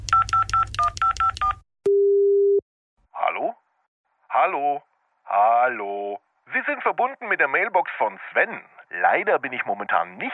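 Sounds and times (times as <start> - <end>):
telephone keypad tones as a number is dialled: 0.0 - 2.6
steady continuous low telephone tone: 1.1 - 2.6
speech: 4.4 - 10.3.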